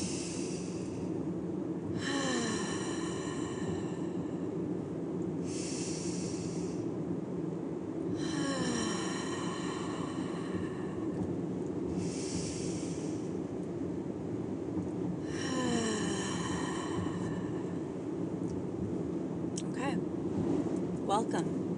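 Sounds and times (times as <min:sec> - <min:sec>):
slow deep breaths taken together: 0:00.0 - 0:04.7, 0:05.4 - 0:07.1, 0:08.1 - 0:14.1, 0:15.0 - 0:19.0
low hum: 0:00.0 - 0:21.7.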